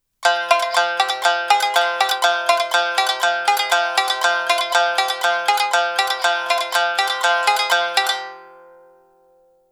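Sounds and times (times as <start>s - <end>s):
shamisen rhythm in F: 0.2s - 9.0s.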